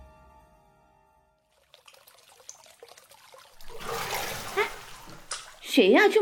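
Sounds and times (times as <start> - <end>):
water sloshing and splashing: 1.4 - 5.8
speech: 5.8 - 6.2.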